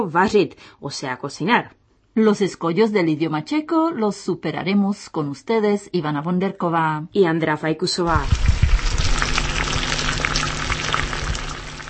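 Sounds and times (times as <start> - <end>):
speech: 0.0 - 8.5
water boiling in a pot or kettle for tea: 8.1 - 11.8.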